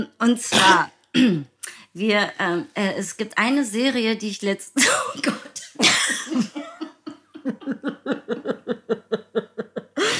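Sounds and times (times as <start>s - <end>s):
speech: 0.0s - 6.5s
wet coughing fit with harsh hacking coughs: 0.5s - 1.5s, 4.8s - 7.0s
laughter: 6.1s - 10.1s.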